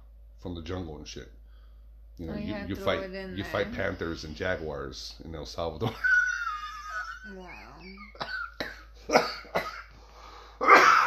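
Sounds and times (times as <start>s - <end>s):
speech: 0.4s - 1.4s, 2.2s - 6.1s, 7.2s - 8.4s, 9.1s - 9.6s
person coughing with harsh hacking cough: 8.0s - 9.9s, 10.6s - 11.0s.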